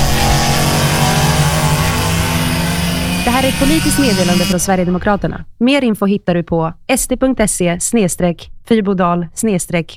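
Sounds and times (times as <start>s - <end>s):
go-kart engine revving: 0.0s - 5.0s
speech: 3.3s - 9.9s.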